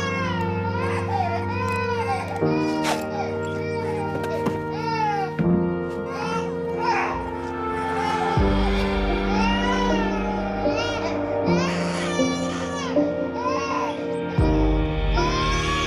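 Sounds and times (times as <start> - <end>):
young child crying and wailing: 0.0 - 15.8.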